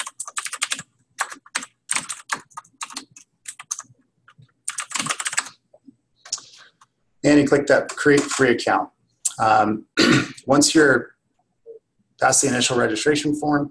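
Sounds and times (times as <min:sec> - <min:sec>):
rapid typing on a computer keyboard entering registration details: 0:00.0 - 0:05.6, 0:07.9 - 0:08.5
speech: 0:07.2 - 0:11.2, 0:12.2 - 0:13.6.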